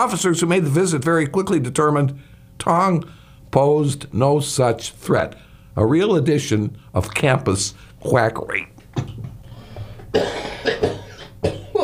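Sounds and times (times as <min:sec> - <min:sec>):
speech: 0:00.0 - 0:09.2, 0:10.1 - 0:10.5
loud raspy hacking cough fit: 0:10.1 - 0:11.8.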